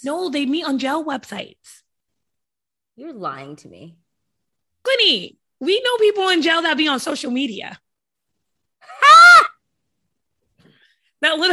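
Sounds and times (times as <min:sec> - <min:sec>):
speech: 0:00.0 - 0:01.8, 0:03.0 - 0:04.0, 0:04.8 - 0:07.8, 0:11.2 - 0:11.5
person screaming into a microphone: 0:08.8 - 0:09.6.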